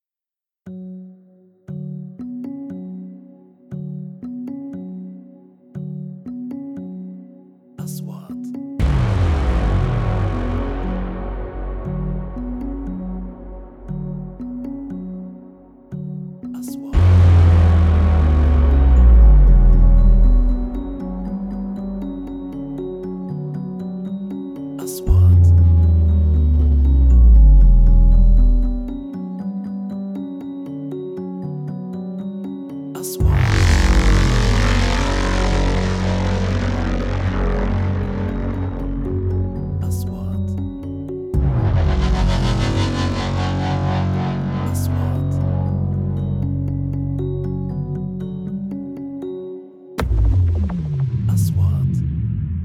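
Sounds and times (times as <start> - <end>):
suspenseful trailer intro music: 8.8 - 16.3, 16.9 - 29.2, 33.1 - 52.6.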